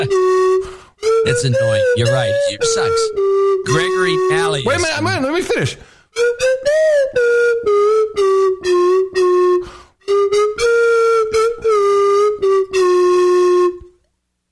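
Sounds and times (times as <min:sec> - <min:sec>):
slide whistle playing a short tune: 0:00.0 - 0:05.1, 0:06.2 - 0:14.0
speech: 0:01.2 - 0:08.8.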